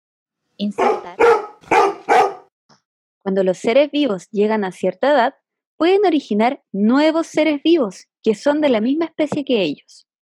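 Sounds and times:
speech: 0.6s - 1.4s, 3.2s - 10.1s
dog barking: 0.6s - 2.5s.

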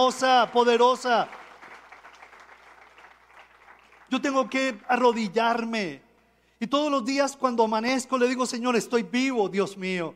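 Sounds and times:
speech: 0.0s - 1.4s, 4.1s - 6.0s, 6.6s - 10.1s
large crowd of listeners applauding: 0.0s - 4.4s.

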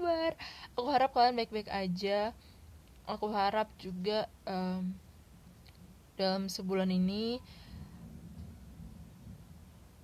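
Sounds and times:
faint hiss: 0.0s - 10.0s
speech: 0.3s - 2.5s, 3.1s - 5.0s, 6.2s - 7.6s
thunder rumbling: 7.4s - 10.0s.

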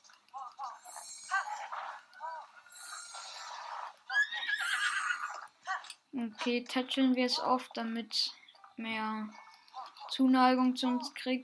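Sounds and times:
horse whinnying with breathy snorts: 2.8s - 5.5s
speech: 6.2s - 9.4s, 10.1s - 11.4s.

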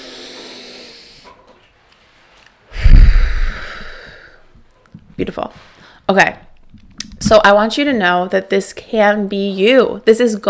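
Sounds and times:
deep breath in a guided breathing exercise: 0.0s - 1.3s, 2.7s - 4.5s
speech: 5.2s - 6.5s, 7.2s - 10.4s.

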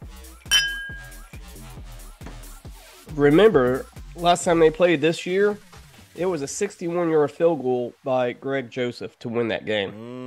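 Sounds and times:
bright glass clink: 0.4s - 1.3s
speech: 3.2s - 10.2s.

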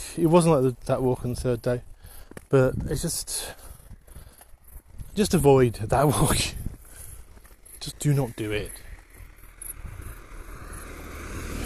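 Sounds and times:
wind buffeting: 0.0s - 11.6s
speech: 0.2s - 3.6s, 5.2s - 6.6s, 7.8s - 8.8s
car passing on a quiet country lane: 7.6s - 11.6s.

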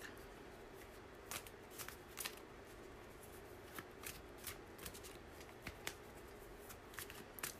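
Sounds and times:
low hum: 0.0s - 7.5s
tarot cards being shuffled: 0.8s - 2.4s, 3.1s - 7.5s.

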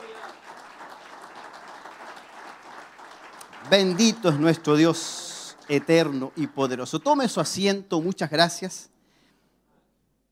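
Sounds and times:
audience applauding in dense clapping: 0.0s - 7.6s
speech: 3.6s - 8.9s.

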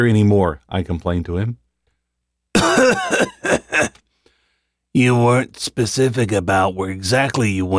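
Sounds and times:
speech: 0.0s - 1.6s, 2.6s - 3.6s, 5.0s - 7.7s
weak hoarse coughs: 2.6s - 4.0s.

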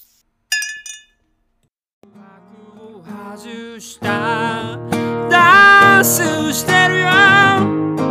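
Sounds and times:
glasses of milk clinking in a toast: 0.5s - 1.3s
speech: 3.4s - 5.3s, 6.0s - 8.0s.

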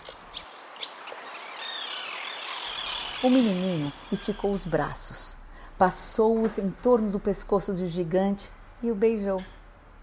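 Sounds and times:
small birds chirping, twittering and warbling: 0.0s - 5.2s
faint airy background: 1.4s - 10.0s
speech: 3.2s - 9.6s.

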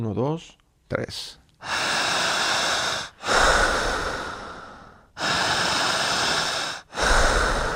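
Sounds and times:
speech: 0.0s - 1.8s
loud forceful open-mouth panting breaths in breathing exercise: 1.6s - 7.7s.

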